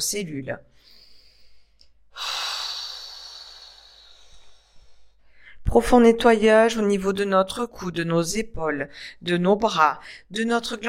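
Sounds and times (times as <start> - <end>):
speech: 0.0 - 1.0, 5.7 - 10.8
deep exhale during a guided relaxation exercise: 0.8 - 5.6.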